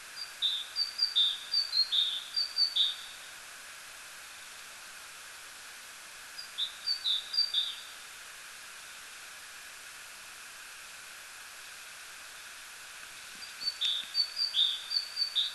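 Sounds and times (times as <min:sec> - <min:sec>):
faint hiss: 0:00.0 - 0:15.5
great tit Parus major singing two-note see-saw phrases: 0:00.2 - 0:03.1, 0:06.4 - 0:07.9, 0:13.4 - 0:15.5.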